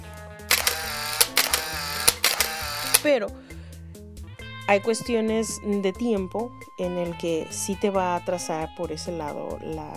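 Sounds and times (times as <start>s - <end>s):
DSLR reflex camera mirror and shutter clicking: 0.5s - 3.1s
speech: 3.0s - 3.6s, 4.7s - 9.9s.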